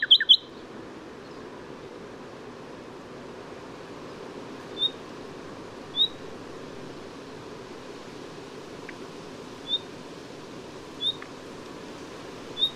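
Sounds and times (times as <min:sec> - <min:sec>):
Common nightingale Luscinia megarhynchos singing sharp notes and high whistles: 0:00.0 - 0:00.6, 0:04.7 - 0:05.1, 0:05.9 - 0:06.2, 0:09.6 - 0:09.9, 0:11.0 - 0:11.3, 0:12.5 - 0:12.7
rushing background hiss: 0:00.0 - 0:12.7.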